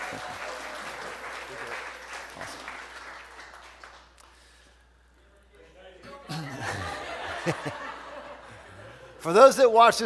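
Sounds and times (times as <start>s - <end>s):
audience applause: 0.0s - 4.1s
speech: 0.1s - 0.5s, 7.4s - 7.8s, 9.2s - 10.0s
laughter: 6.2s - 9.2s.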